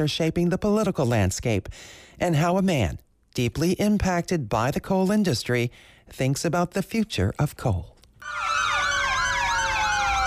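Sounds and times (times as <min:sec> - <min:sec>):
speech: 0:00.0 - 0:08.7
wailing sirens of volunteer fire trucks starting a coal festival parade in West Virginia: 0:08.2 - 0:10.2.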